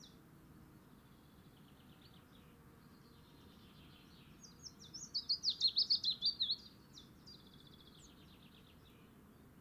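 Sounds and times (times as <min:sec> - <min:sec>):
adult willow warbler singing soft whistled notes: 0:04.2 - 0:09.0.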